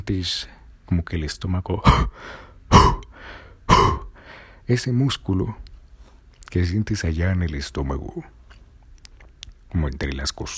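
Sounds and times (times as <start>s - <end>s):
speech: 0.0s - 3.0s, 4.7s - 5.6s, 6.5s - 8.4s, 9.7s - 10.5s
forceful cough-like bursts of air with rasping tail: 1.9s - 4.6s.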